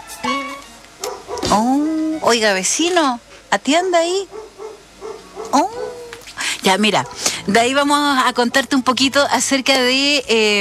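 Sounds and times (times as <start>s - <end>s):
small dog yapping with high-pitched barks: 1.0s - 1.6s, 4.2s - 6.2s, 7.0s - 7.4s
speech: 1.5s - 4.4s, 5.5s - 5.8s, 6.6s - 10.6s.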